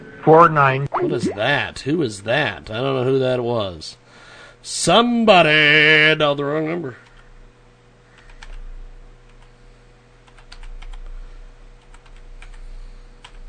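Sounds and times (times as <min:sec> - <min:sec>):
low steady hum: 0:00.0 - 0:03.4
speech: 0:00.2 - 0:04.0, 0:04.6 - 0:07.0
typing on a computer keyboard: 0:08.2 - 0:08.6, 0:10.2 - 0:11.0, 0:11.8 - 0:12.6.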